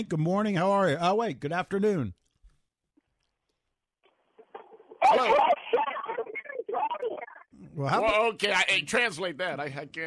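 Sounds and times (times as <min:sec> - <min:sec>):
speech: 0:00.0 - 0:02.2, 0:05.1 - 0:05.6, 0:07.8 - 0:10.0
garbled tinny voice of a caller over a phone line: 0:05.0 - 0:07.5.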